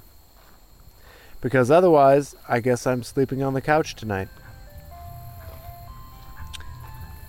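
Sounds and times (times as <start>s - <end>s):
speech: 1.4s - 4.4s
street noise: 2.8s - 7.2s
low rumble of engine: 3.0s - 7.2s
ice cream truck jingle: 3.3s - 7.2s.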